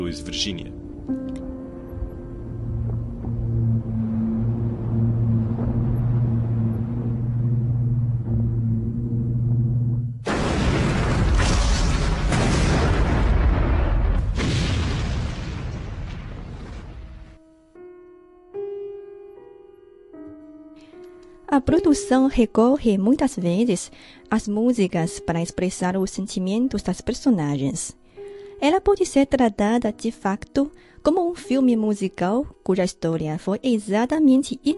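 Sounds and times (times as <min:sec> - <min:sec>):
orchestral music: 0:00.0 - 0:10.0
speech: 0:00.1 - 0:00.8, 0:21.6 - 0:28.0, 0:28.6 - 0:34.7
massive roaring explosion of a ship: 0:02.8 - 0:17.4.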